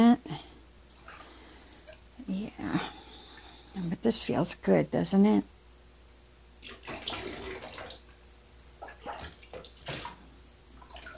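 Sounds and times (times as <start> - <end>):
speech: 4.0 - 5.6
water splashing and trickling as someone's back is washed: 6.6 - 8.1, 8.8 - 11.1.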